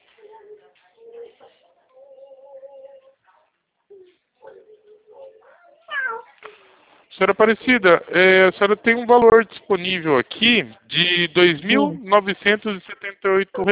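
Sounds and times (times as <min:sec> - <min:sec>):
cat meowing: 0:05.6 - 0:06.4
speech: 0:07.2 - 0:13.7.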